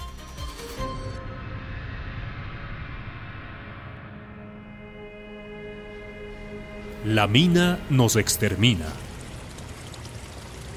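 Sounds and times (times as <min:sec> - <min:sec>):
rushing water like a stream or spring pouring: 0:06.6 - 0:10.7
speech: 0:07.0 - 0:09.0.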